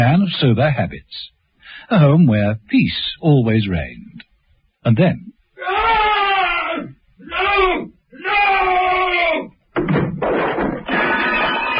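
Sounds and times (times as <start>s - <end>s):
speech: 0.0s - 6.2s, 6.8s - 10.6s
high strained cry: 5.6s - 9.5s
clattering and rattling bangs: 9.7s - 11.7s
loud crash of heavy impacts: 9.8s - 11.7s.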